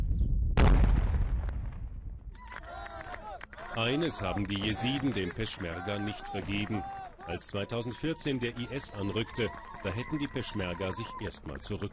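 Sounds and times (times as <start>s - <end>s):
explosion blowing up a mined building during an exercise in Iraq: 0.0s - 2.4s
speech: 3.8s - 11.9s.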